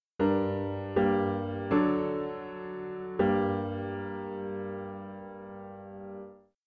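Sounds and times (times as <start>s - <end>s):
piano dictation: 0.0s - 6.6s.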